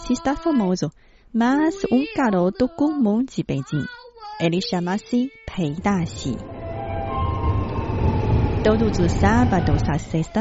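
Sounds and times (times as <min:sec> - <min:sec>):
speech: 0:00.1 - 0:06.5, 0:08.6 - 0:10.3
Beijing subway train rumbling along: 0:05.7 - 0:10.3.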